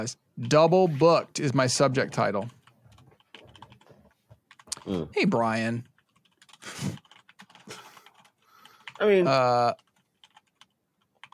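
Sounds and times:
speech: 0.0s - 2.6s, 4.8s - 5.9s, 9.0s - 9.8s
typing an email on a computer keyboard: 2.4s - 4.8s, 5.8s - 11.3s.

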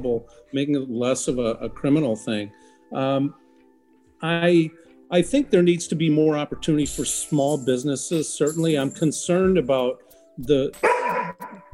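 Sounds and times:
speech: 0.0s - 3.4s, 4.2s - 11.7s
dog barking in drawn-out tonal bursts: 10.8s - 11.7s.

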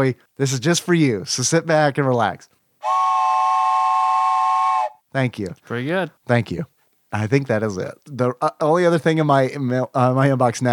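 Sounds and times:
speech: 0.0s - 3.1s, 5.2s - 10.7s
whistle long blast: 2.8s - 5.0s.

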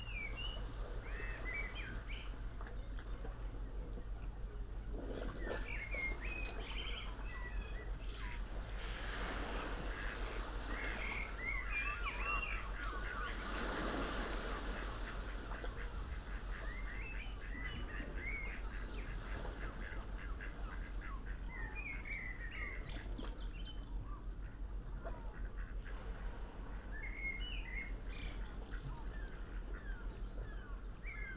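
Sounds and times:
soft wash of sea water near boulders: 0.0s - 31.3s
birds chirping and calling by a calm sea at sunrise: 5.2s - 8.5s, 9.9s - 13.6s, 15.0s - 25.7s, 26.9s - 31.3s.

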